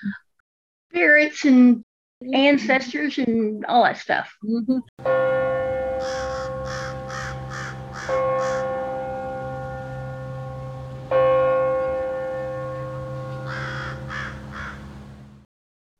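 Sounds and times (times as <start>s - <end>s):
speech: 0.9s - 5.4s
long ringing tones of a struck bell: 5.0s - 15.4s
crow cawing: 5.9s - 8.9s, 12.7s - 15.1s.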